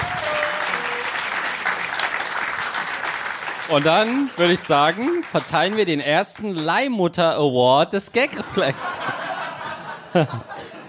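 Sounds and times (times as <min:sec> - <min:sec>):
brief tonal whistle: 0:00.0 - 0:01.4
audience applause: 0:00.0 - 0:07.0
speech: 0:03.7 - 0:09.0, 0:10.1 - 0:10.6
laughter: 0:08.2 - 0:10.8.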